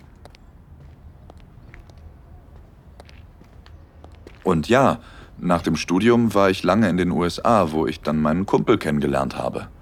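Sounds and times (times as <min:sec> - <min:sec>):
footsteps of two people on a hard surface in empty city alleys at night: 0:00.0 - 0:04.7
low continuous outdoor rumble: 0:00.0 - 0:09.8
speech: 0:04.5 - 0:09.8.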